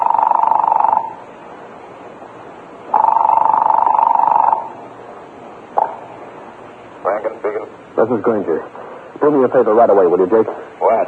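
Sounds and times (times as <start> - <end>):
telephone line buzzing on a call to a police department: 0.0 - 1.2, 2.9 - 4.8
speech: 8.0 - 11.0.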